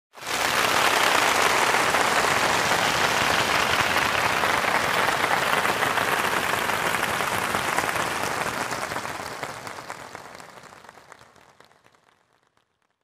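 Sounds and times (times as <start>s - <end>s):
concert crowd applause and clapping: 0.1s - 13.0s.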